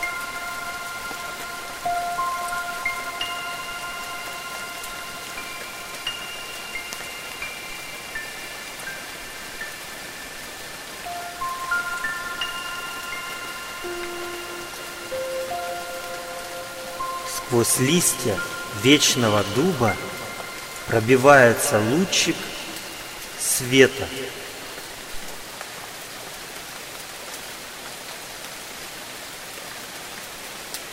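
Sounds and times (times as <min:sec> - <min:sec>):
soft sustained gliding musical tones: 0:00.0 - 0:27.5
steady rain pattering across a surface: 0:00.0 - 0:30.9
speech: 0:17.5 - 0:20.1, 0:20.9 - 0:22.5, 0:23.6 - 0:24.4.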